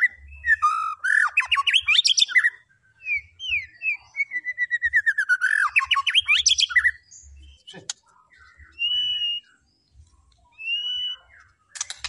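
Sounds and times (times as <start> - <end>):
White-rumped shama singing whistles, chattering trills and slurred notes: 0.0 - 12.0.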